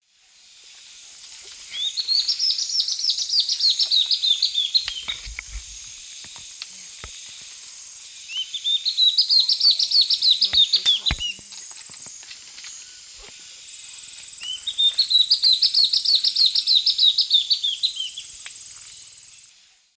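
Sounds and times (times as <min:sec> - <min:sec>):
Hylophylax naevius song in varzea: 0:01.4 - 0:05.4, 0:08.1 - 0:19.5.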